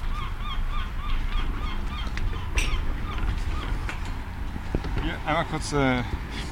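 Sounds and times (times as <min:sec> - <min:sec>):
gull calling: 0:00.0 - 0:04.3
rumble of wind or surf: 0:00.0 - 0:06.5
speech: 0:05.3 - 0:06.2.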